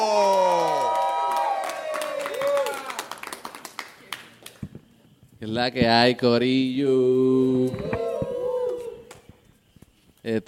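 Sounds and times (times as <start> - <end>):
audience crowd cheering and whooping: 0.0 - 3.5, 7.4 - 9.3
dense audience applause: 0.2 - 4.7
speech: 5.4 - 8.0, 10.2 - 10.4.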